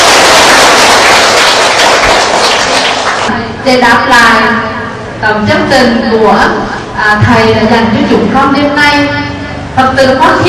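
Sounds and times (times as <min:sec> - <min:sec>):
audience applause: 0:00.0 - 0:03.3
speech: 0:03.7 - 0:09.2, 0:09.8 - 0:10.4.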